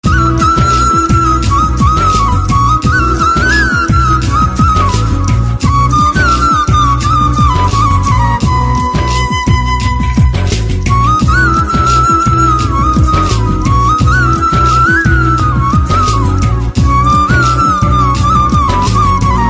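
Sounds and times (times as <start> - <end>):
flute ringtone: 0.0 - 19.4.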